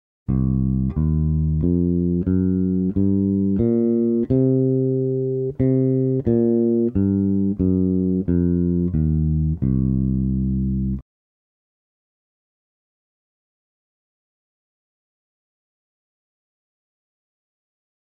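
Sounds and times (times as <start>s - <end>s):
blues scale: 0.3s - 11.0s.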